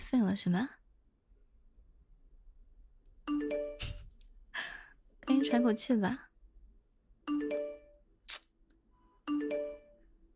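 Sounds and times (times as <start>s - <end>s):
speech: 0.1s - 0.8s, 5.5s - 6.3s
phone notification chime, bright two-tone electronic jingle: 3.3s - 4.0s, 5.3s - 5.9s, 7.3s - 8.0s, 9.3s - 10.1s
sharp short click: 8.3s - 8.5s.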